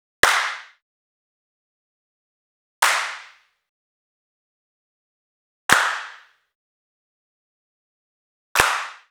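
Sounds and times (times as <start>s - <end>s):
hand claps in small ambience: 0.2s - 0.8s, 2.8s - 3.5s, 5.7s - 6.4s, 8.6s - 9.0s.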